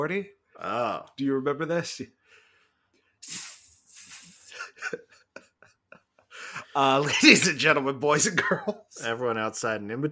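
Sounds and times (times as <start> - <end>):
speech: 0.0 - 2.2, 3.2 - 3.5, 4.8 - 5.1, 6.8 - 10.1
voice imitating jazz with rhythmic hissing and clicks: 3.2 - 4.9.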